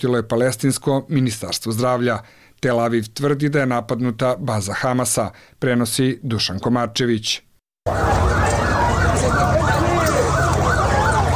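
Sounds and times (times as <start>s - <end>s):
speech: 0.0s - 8.5s
dense rumble of street noise: 7.9s - 11.3s
emergency vehicle siren wailing at airstrike scene in Rafah refugee camp: 7.9s - 11.3s
indistinct voices: 7.9s - 11.3s.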